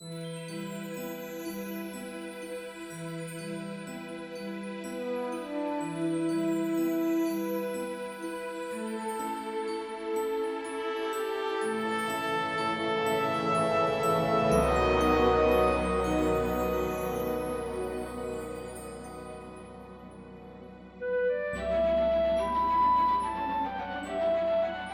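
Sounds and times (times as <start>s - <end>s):
epic orchestral fantasy music: 5.0s - 24.9s.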